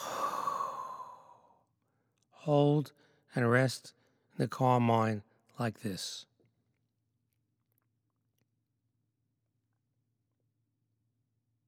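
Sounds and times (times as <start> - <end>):
forceful exhale during a breathing exercise: 0.0 - 1.6
speech: 2.4 - 6.3.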